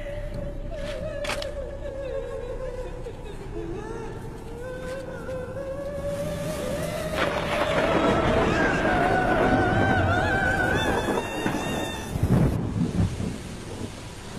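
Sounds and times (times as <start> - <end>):
wavering wail-like tone: 0.6 - 12.4
heavy rain: 4.8 - 14.3
low thunder rumbling: 6.1 - 14.3.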